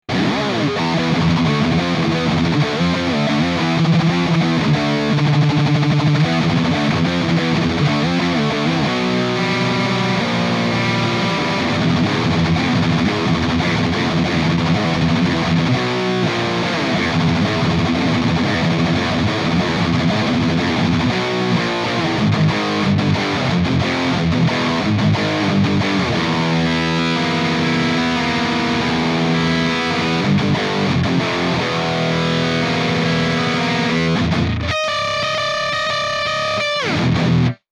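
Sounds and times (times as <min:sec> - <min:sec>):
thrash metal guitar: 0:00.0 - 0:37.6.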